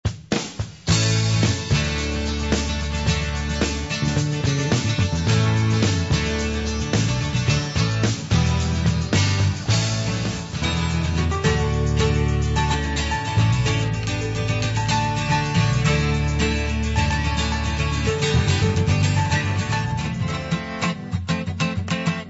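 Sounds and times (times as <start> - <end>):
acoustic melody: 0.8 - 22.2.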